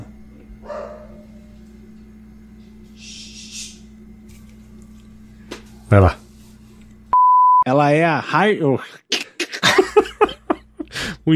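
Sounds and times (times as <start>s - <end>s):
steady low hum: 0.0s - 7.6s
dog bark indoors: 0.6s - 1.4s
speech: 5.9s - 6.2s, 7.9s - 9.1s
laughter: 8.9s - 11.1s.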